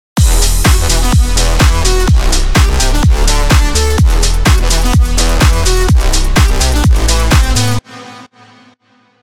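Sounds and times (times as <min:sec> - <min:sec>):
full crash cymbal: 0:00.2 - 0:07.7.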